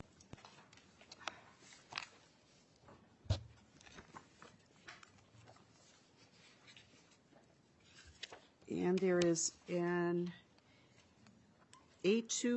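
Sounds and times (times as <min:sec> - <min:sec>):
papers being shuffled and handled: 0:00.0 - 0:09.8
speech: 0:08.8 - 0:10.4, 0:12.0 - 0:12.5.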